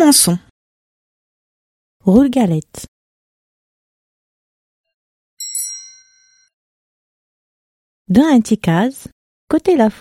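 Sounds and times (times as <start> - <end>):
speech: 0.0 - 0.5, 2.0 - 2.9, 8.1 - 9.9
small bell signalling a page turn in a read-along story: 5.4 - 6.5.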